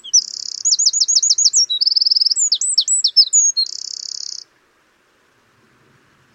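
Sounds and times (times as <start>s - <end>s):
Eurasian wren Troglodytes troglodytes singing buzzy trills: 0.0s - 4.4s.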